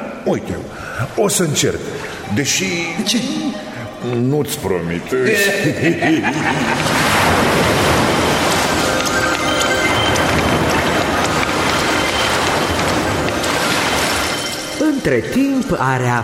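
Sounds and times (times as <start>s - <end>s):
speech: 0.2s - 8.0s, 15.0s - 16.2s
laughter: 5.5s - 7.5s
rough sea waves crashing: 6.2s - 16.2s.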